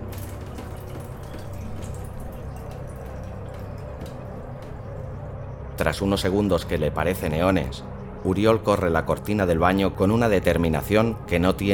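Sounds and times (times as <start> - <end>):
water drops falling from a wet body onto a ceramic shower tray: 0.0 - 5.0
speech: 5.8 - 11.7.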